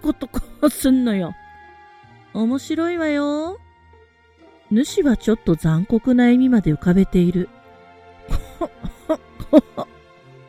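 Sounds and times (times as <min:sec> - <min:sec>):
speech: 0:00.0 - 0:01.4, 0:02.3 - 0:03.6, 0:04.7 - 0:07.6, 0:08.3 - 0:09.9
person coughing harshly and hoarsely in a coughing fit: 0:08.3 - 0:09.9.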